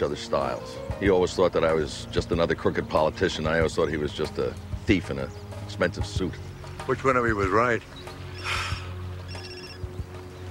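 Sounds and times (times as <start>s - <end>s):
speech: 0.0s - 8.6s
telephone ringing: 9.3s - 9.9s.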